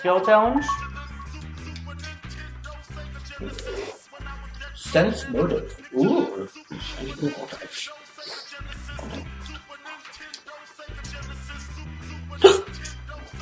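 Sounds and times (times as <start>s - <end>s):
speech: 0.0s - 0.9s, 3.4s - 4.0s, 4.8s - 9.3s
soft vocal noises: 2.9s - 11.5s, 12.4s - 13.4s
hiccup: 12.4s - 12.8s.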